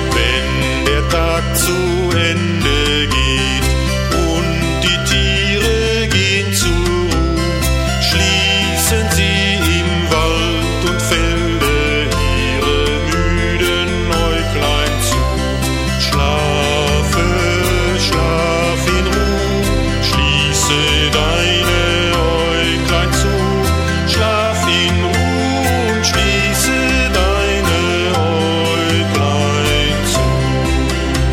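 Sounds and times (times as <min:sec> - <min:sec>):
person singing a children's evening song: 0:00.1 - 0:31.2.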